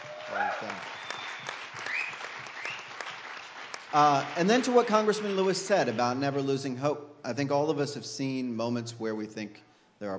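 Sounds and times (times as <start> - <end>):
people cheering: 0.0 - 6.0
audience applause for a U.S. congressman: 0.0 - 6.1
speech: 0.4 - 1.1, 3.9 - 10.1.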